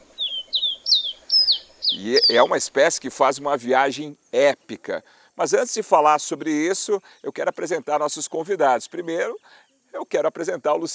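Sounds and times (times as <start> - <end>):
caboclinho seedeater singing clear whistled notes: 0.2 - 2.5
speech: 1.9 - 10.9.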